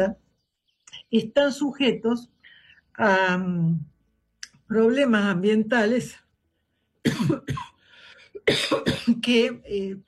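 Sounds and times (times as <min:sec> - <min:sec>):
speech: 0:00.0 - 0:00.2, 0:01.1 - 0:02.4, 0:03.0 - 0:03.9, 0:04.7 - 0:06.2, 0:07.0 - 0:07.6, 0:08.5 - 0:10.0
person coughing from an allergy: 0:07.0 - 0:09.5.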